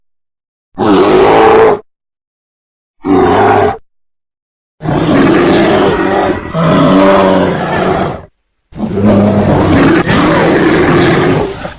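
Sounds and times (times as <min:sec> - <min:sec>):
brown bear giving harsh growling roars: 0:00.8 - 0:01.9, 0:03.0 - 0:03.8, 0:04.8 - 0:11.7.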